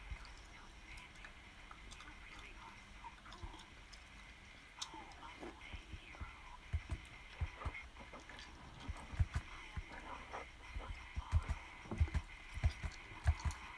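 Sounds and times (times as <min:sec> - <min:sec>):
quiet steady murmur: 0:00.0 - 0:13.7
wet mouth sounds of chewing and slurping: 0:03.2 - 0:13.7.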